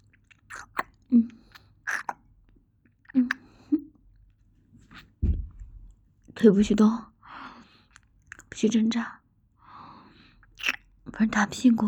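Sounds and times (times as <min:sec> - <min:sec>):
person chewing while tasting food: 0:00.0 - 0:02.3, 0:07.9 - 0:08.5, 0:10.4 - 0:10.9
speech: 0:06.4 - 0:07.1, 0:08.6 - 0:09.2, 0:11.2 - 0:11.8.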